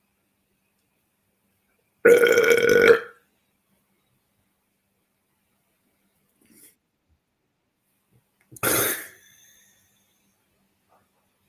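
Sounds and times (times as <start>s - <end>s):
loud drawn-out burp after lunch: 2.0s - 3.2s, 8.6s - 9.2s.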